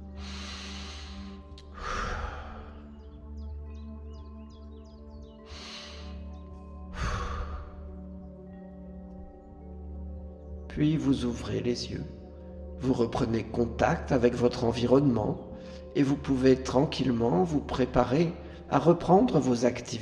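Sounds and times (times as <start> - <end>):
slow deep breaths with a lengthened exhale: 0.0 - 3.1, 5.4 - 9.0, 15.5 - 16.0, 18.4 - 18.7
quiet sustained tonal drone: 0.0 - 20.0
speech: 10.8 - 12.2, 12.8 - 20.0.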